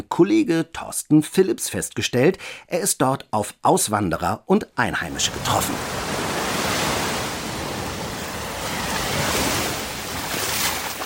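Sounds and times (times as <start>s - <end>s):
speech: 0.2s - 6.1s
surf breaking along a windy coast: 5.1s - 11.0s.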